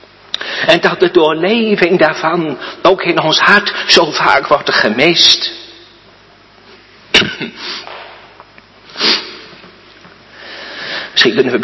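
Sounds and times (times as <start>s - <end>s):
speech: 0.6s - 5.6s, 11.2s - 11.6s
speaker coughing: 7.1s - 8.0s
softer breathy sniffs: 8.9s - 9.6s.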